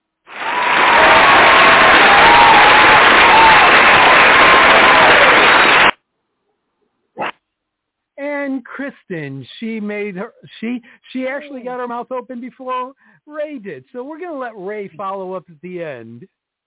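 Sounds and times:
crowd applause with cheering sound effect: 0.3s - 6.0s
speech: 8.6s - 16.4s.

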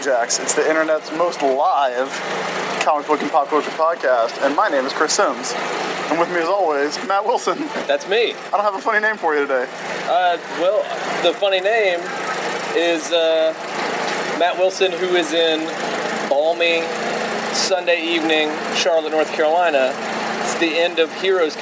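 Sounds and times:
generators churning and sputtering powering food trucks: 0.0s - 21.6s
speech: 0.0s - 21.6s.

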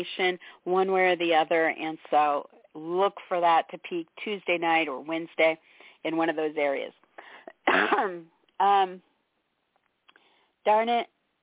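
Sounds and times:
speech: 0.0s - 7.0s, 7.7s - 9.1s, 10.6s - 11.2s
short throaty coughs from a dry throat: 7.6s - 8.2s.

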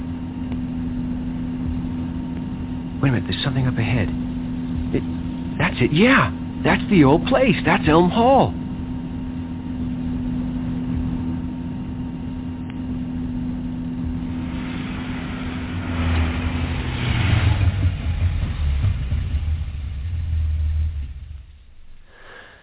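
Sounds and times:
car engine idling: 0.0s - 22.6s
speech: 3.0s - 4.3s, 4.9s - 8.6s.

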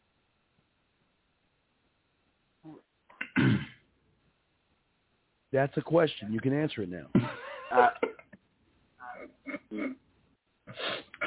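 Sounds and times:
person sneezing in a sneeze fit: 3.2s - 3.8s, 10.7s - 11.2s
speech: 5.5s - 8.1s, 9.2s - 10.0s
laughter: 7.2s - 8.3s.

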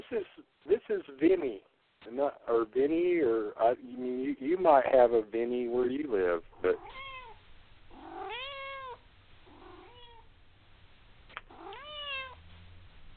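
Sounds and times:
faint low hum: 0.0s - 13.1s
speech: 0.1s - 0.4s, 1.0s - 7.1s
cat meowing: 6.6s - 10.3s, 11.3s - 12.5s.

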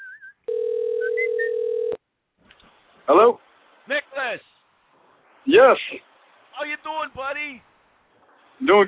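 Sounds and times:
computer-controlled telephone dialing tones: 0.5s - 2.0s
speech: 5.6s - 6.0s, 8.6s - 8.8s.

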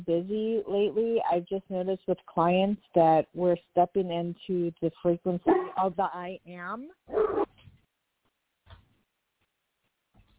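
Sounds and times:
speech: 0.0s - 7.5s
puppy whimpering yips: 7.1s - 7.5s.

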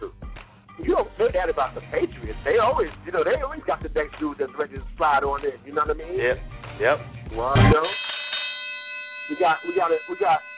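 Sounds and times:
speech: 1.3s - 8.1s, 9.3s - 10.5s
bell struck with a long metallic tone: 7.6s - 10.5s.

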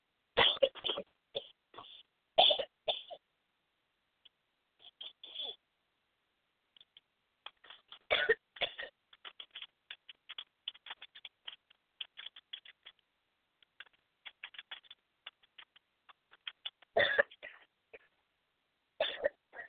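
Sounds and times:
person coughing harshly: 0.4s - 3.2s, 8.1s - 9.0s, 17.0s - 18.1s, 19.0s - 19.6s.

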